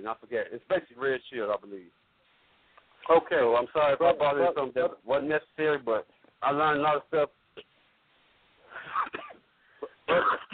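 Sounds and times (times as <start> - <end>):
speech: 0.0 - 2.0, 3.0 - 7.7, 10.1 - 10.5
person coughing over a call line: 8.7 - 10.5
throat clearing over a call line: 8.7 - 10.5.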